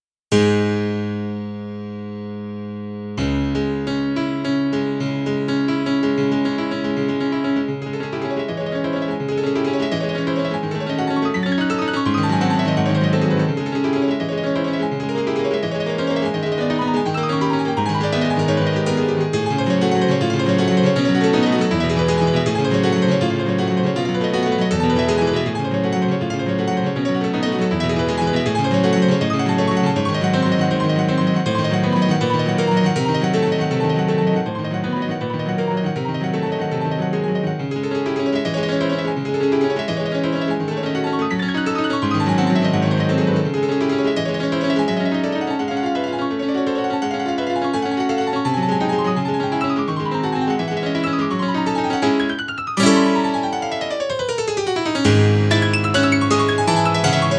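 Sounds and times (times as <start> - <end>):
acoustic piano: 0.3 - 57.3.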